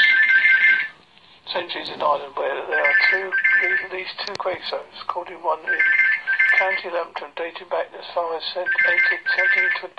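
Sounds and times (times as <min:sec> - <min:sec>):
phone ringing with a bright electronic tone: 0:00.0 - 0:01.0, 0:02.7 - 0:04.1, 0:05.6 - 0:07.0, 0:08.6 - 0:09.9
speech: 0:01.6 - 0:09.9.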